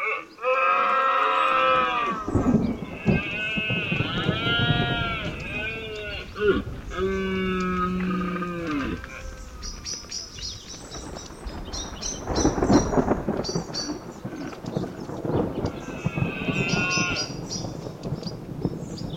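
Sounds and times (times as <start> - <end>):
red deer stags bellowing during the rut: 0.0 - 9.7
high animal calls: 0.0 - 10.4, 15.6 - 17.6
deep rolls of thunder outdoors: 1.5 - 19.1.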